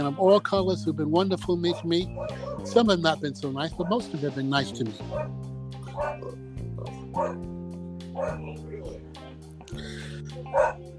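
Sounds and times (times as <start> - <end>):
speech: 0.0 - 6.5, 7.2 - 7.5, 8.2 - 9.0, 10.5 - 10.9
dog barking: 1.7 - 2.8, 5.1 - 6.4, 7.1 - 7.4, 8.1 - 9.0, 10.4 - 10.9.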